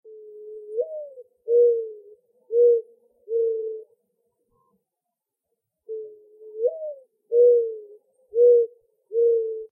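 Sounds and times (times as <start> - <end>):
mourning dove cooing: 0.1 - 4.0, 5.9 - 9.6.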